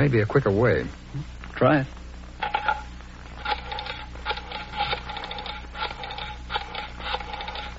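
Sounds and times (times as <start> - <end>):
speech: 0.0 - 2.0
low hum: 0.0 - 7.7
telephone being dialed with mechanical clicks: 3.4 - 7.7.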